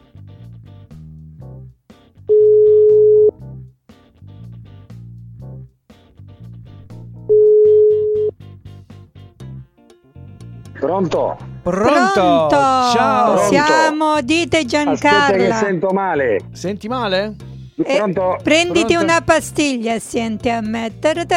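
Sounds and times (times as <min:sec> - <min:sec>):
electronic telephone beeps while a call is placed: 0:02.3 - 0:03.4, 0:07.3 - 0:08.3
speech: 0:10.8 - 0:21.3.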